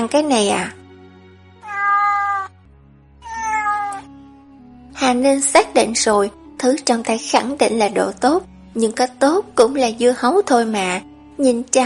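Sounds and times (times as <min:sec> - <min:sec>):
speech: 0:00.0 - 0:00.8, 0:05.0 - 0:11.8
sand cat meowing on a lap: 0:01.6 - 0:02.6, 0:03.2 - 0:04.1.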